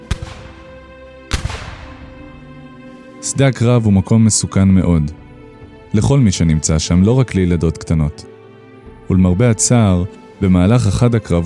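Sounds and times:
cannon blasts: 0.0 - 2.3
speech: 3.2 - 5.2, 5.9 - 8.3, 9.1 - 11.4.

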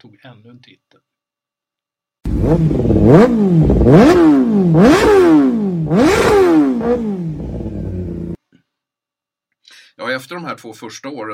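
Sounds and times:
speech: 0.0 - 1.1, 2.5 - 6.0, 10.2 - 11.3
superbike motorcycle engine revving hard: 2.3 - 8.4.

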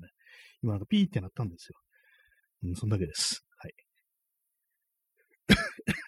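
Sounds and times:
speech: 0.6 - 1.9, 2.6 - 3.8
harsh raspy coughs: 5.4 - 6.0.

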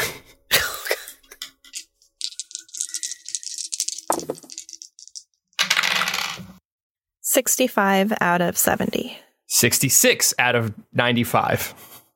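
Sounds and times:
person clearing throat or coughing: 0.0 - 1.3
dice clattering on a hard surface: 1.7 - 6.6
speech: 7.4 - 11.9.

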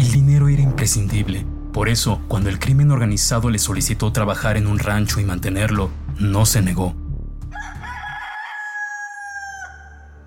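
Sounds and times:
speech: 0.8 - 7.0
fighting rooster crowing at a ranch in Tijuana: 7.5 - 10.2.

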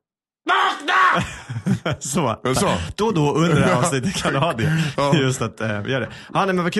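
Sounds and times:
person screaming loudly: 0.4 - 1.3
speech: 0.5 - 6.7
laughter: 1.0 - 5.9.

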